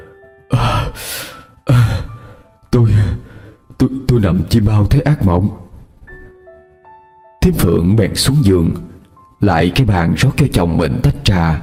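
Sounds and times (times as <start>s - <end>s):
frightened sweating man panting heavily after waking from a nightmare: 0.6s - 2.5s
speech: 0.9s - 1.8s, 3.8s - 5.6s, 7.4s - 11.6s.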